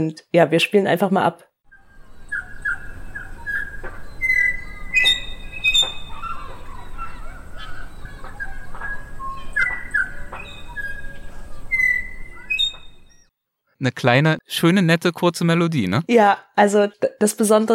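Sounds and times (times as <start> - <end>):
speech: 0.0 - 1.5, 13.8 - 17.7
Tui singing: 1.7 - 13.4.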